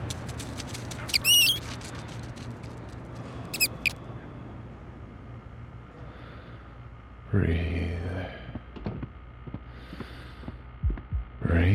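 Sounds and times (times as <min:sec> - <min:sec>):
low hum: 0:00.0 - 0:11.7
speech: 0:07.4 - 0:07.8
faint heartbeat thumps: 0:08.5 - 0:11.4.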